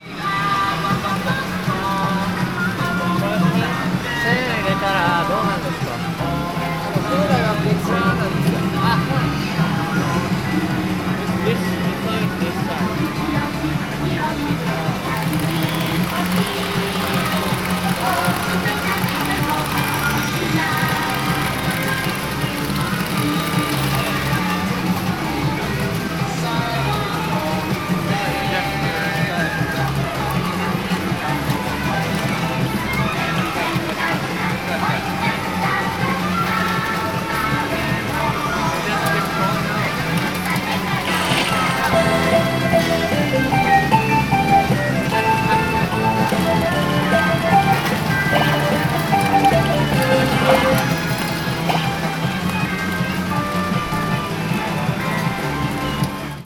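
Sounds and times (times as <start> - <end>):
pachinko machines: 0.1 - 56.4.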